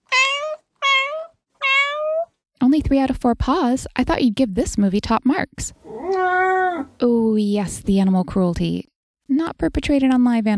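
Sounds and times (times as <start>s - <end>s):
cat meowing: 0.0s - 2.3s, 5.8s - 7.0s
speech: 2.7s - 6.1s, 6.8s - 10.5s.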